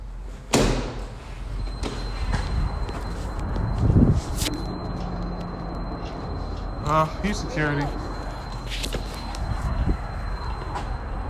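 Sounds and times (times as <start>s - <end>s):
steady low hum: 0.0s - 11.2s
doors slamming: 0.5s - 1.1s
speech: 6.9s - 8.0s.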